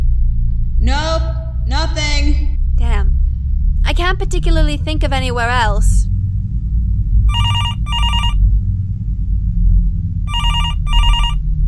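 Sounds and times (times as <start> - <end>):
low rumbling hum: 0.0 - 11.6
speech: 4.1 - 6.1
telephone ringing with warbling electronic trills: 7.3 - 8.4, 10.3 - 11.4.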